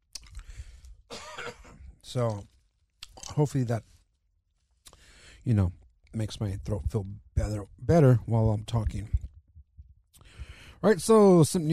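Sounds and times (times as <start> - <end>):
wet mouth and tongue noises from a cough drop popped into the mouth: 0.1 - 0.5, 3.0 - 3.4
speech: 1.5 - 2.5, 3.4 - 3.9, 5.4 - 9.2, 10.8 - 11.7.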